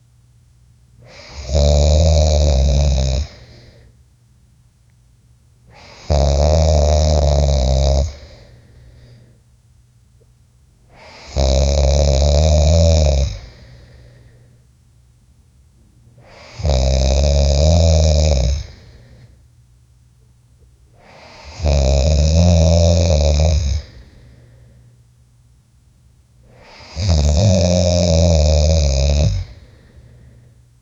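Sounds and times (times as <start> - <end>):
10 or more men snoring in sleep: 1.1 - 3.7, 5.7 - 8.6, 11.0 - 13.9, 16.2 - 19.1, 21.0 - 24.2, 26.5 - 30.0.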